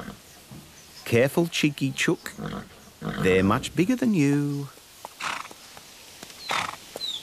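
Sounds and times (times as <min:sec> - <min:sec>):
speech: 0:01.1 - 0:04.8
horse snorting: 0:02.4 - 0:03.5, 0:05.2 - 0:05.6, 0:06.4 - 0:06.9.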